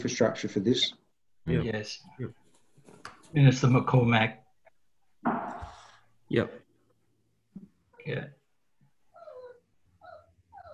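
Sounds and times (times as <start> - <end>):
speech: 0.0 - 2.4, 3.3 - 4.4, 6.3 - 6.6, 8.0 - 8.4
puppy whimpering and yelping in a room: 9.1 - 10.7.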